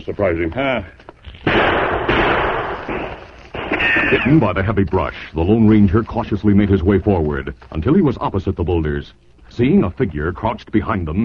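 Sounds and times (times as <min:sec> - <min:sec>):
speech: 0:00.0 - 0:02.0, 0:03.8 - 0:11.2
gunshots fired toward boulders in the woods: 0:01.3 - 0:04.6.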